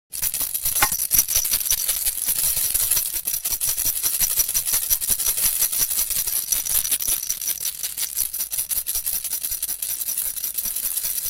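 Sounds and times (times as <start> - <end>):
rattle: 0.1 - 11.2.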